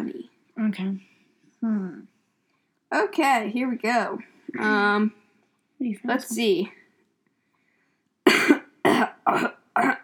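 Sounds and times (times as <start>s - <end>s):
speech: 0.7s - 2.1s, 2.9s - 5.2s, 5.8s - 6.8s, 9.3s - 9.6s
person coughing: 8.2s - 10.0s.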